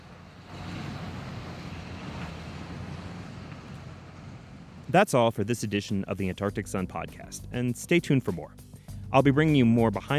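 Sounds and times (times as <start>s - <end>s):
heavy vehicle engines rumbling: 0.0s - 6.8s
speech: 4.9s - 10.1s.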